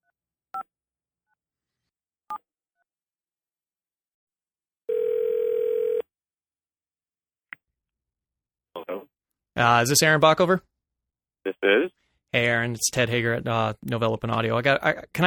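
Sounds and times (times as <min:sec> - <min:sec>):
steady phone tone: 0:04.9 - 0:06.1
speech: 0:09.6 - 0:10.7, 0:11.4 - 0:15.2.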